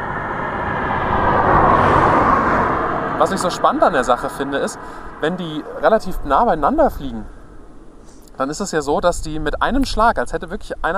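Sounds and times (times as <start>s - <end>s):
car driving past: 0.0s - 6.0s
speech: 3.2s - 7.4s, 8.4s - 10.9s.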